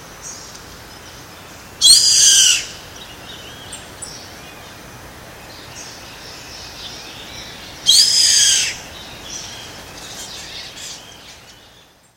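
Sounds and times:
yellow-headed caracara screeching in Comandatuba, Bahia, Brazil: 7.9 - 8.8.

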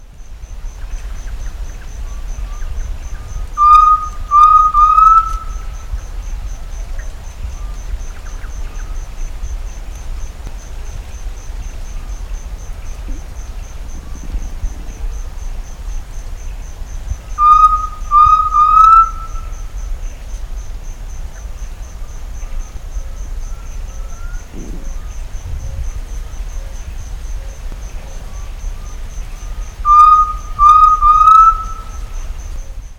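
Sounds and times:
Crypturellus undulatus calling: 3.6 - 5.6, 17.4 - 19.6, 29.8 - 32.0.

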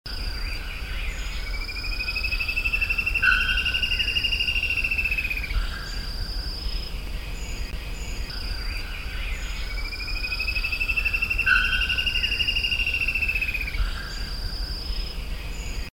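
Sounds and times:
insects buzzing: 0.1 - 15.9
Spot-backed Antshrike trilling song in Atibaia, São Paulo state, Brazil: 1.3 - 6.1, 7.5 - 14.3.

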